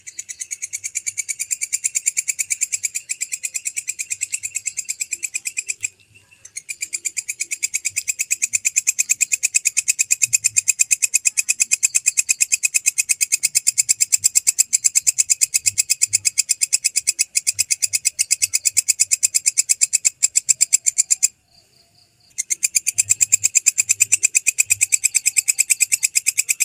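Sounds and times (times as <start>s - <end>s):
belalang kecek grasshopper: 0.0s - 26.6s.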